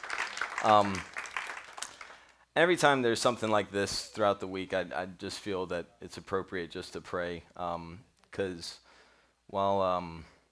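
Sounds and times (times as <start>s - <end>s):
crowd applauding for veterans: 0.0s - 2.3s
speech: 0.6s - 1.1s, 2.6s - 8.8s, 9.5s - 10.3s.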